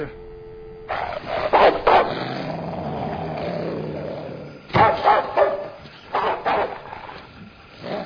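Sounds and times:
several dogs barking: 0.9s - 2.5s, 4.7s - 7.2s.

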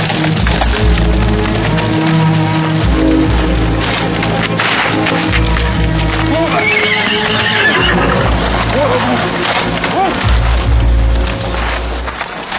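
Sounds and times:
indistinct voices: 0.0s - 12.4s
hooves clattering: 0.0s - 12.5s
wood cracking: 0.0s - 12.5s
horse neighing: 6.3s - 9.3s.

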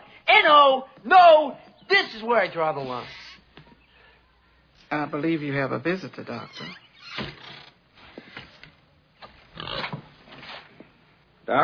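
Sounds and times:
speech: 0.4s - 3.2s, 4.9s - 7.4s, 11.5s - 11.6s
pig grunting and oinking: 9.5s - 10.0s.

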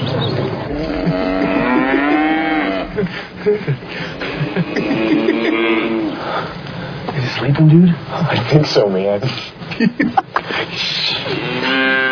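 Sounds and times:
cow mooing in a pasture: 0.7s - 3.1s, 4.2s - 6.2s, 11.3s - 12.1s
laughter: 0.7s - 6.2s, 9.7s - 11.4s
speech: 3.0s - 4.2s, 7.4s - 12.1s.

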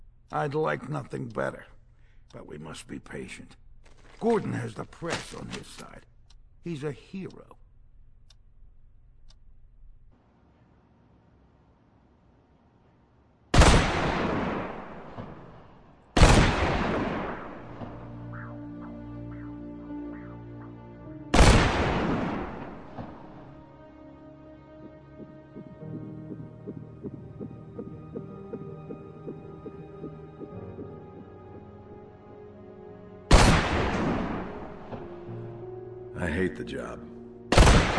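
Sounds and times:
speech: 0.3s - 3.6s, 4.2s - 7.6s, 36.7s - 37.1s
gunshots during shooting practice with ringing decay: 13.6s - 18.9s, 21.3s - 23.5s, 33.3s - 35.1s, 37.5s - 37.9s.

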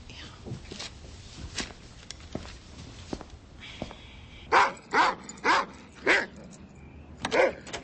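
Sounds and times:
dog barking sharply: 4.5s - 6.3s, 7.3s - 7.6s.

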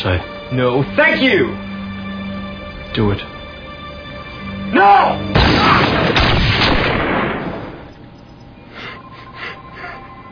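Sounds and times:
speech: 0.0s - 1.7s, 2.9s - 3.4s, 4.7s - 6.1s
gunshots during an armed standoff: 5.3s - 7.9s.

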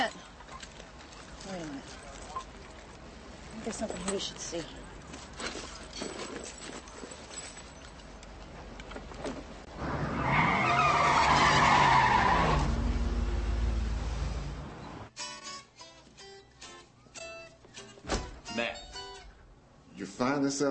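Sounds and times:
speech: 3.6s - 4.8s, 20.5s - 20.6s
car approaching with loud drawn-out tire skid: 9.7s - 15.1s.

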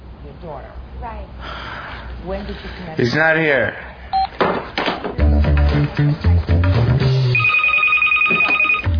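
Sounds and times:
speech: 0.3s - 4.6s, 5.8s - 7.2s
telephone ringing with a high electronic tone: 7.3s - 8.9s.

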